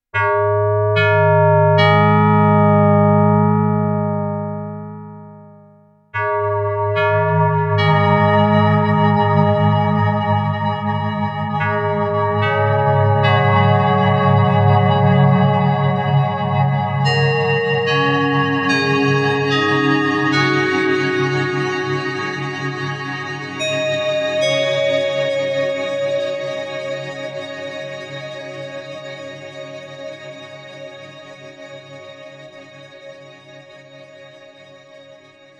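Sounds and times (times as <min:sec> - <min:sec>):
FM synth sound: 0:00.2 - 0:29.1.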